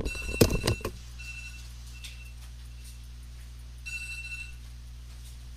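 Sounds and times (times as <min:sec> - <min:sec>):
timer alarm beeping: 0:00.0 - 0:03.0, 0:03.8 - 0:04.7.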